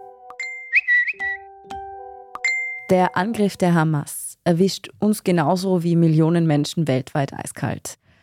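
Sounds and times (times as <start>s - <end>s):
several phones' notification chimes from news push alerts: 0.0s - 3.8s
speech: 2.9s - 8.0s.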